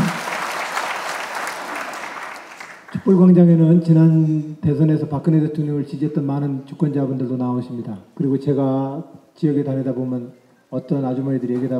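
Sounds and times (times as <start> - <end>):
audience applause at a political town-hall gathering in a city hall: 0.0 - 3.0
speech: 3.1 - 11.7.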